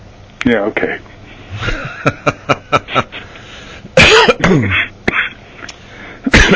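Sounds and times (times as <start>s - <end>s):
speech: 0.4s - 3.3s, 4.5s - 4.8s
laughter: 1.6s - 3.4s
person coughing: 4.0s - 5.4s, 6.3s - 6.5s
throat clearing: 4.0s - 5.4s, 6.3s - 6.5s.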